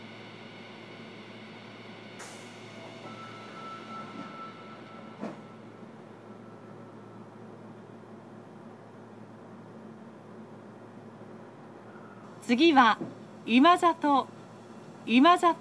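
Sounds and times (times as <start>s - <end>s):
commuter train rumbling in motion heard from inside a carriage: 0.0s - 15.6s
commuter train clanks and squeaks: 2.2s - 6.9s
speech: 12.5s - 14.3s, 15.1s - 15.6s.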